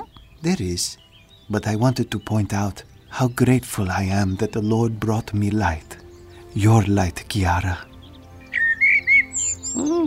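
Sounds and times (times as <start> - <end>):
small bird warbling a low note: 0.0 - 2.0, 7.8 - 10.0
small bird chirping: 0.0 - 10.0
speech: 0.4 - 6.0, 6.6 - 7.9.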